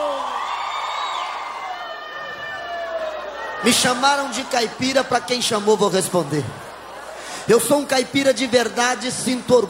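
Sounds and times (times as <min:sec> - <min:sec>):
audience shouting and cheering: 0:00.0 - 0:09.6
speech: 0:03.6 - 0:06.7, 0:07.5 - 0:09.6.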